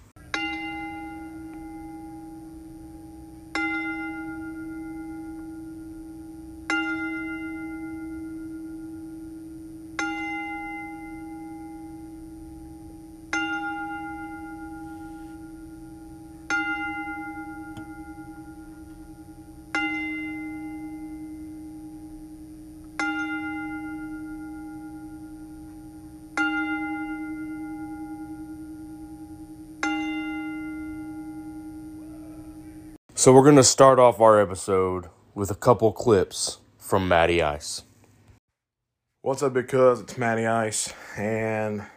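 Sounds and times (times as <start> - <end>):
memorial bell tolling: 0.2 - 22.3, 23.0 - 33.0
speech: 33.2 - 37.9, 39.3 - 41.9.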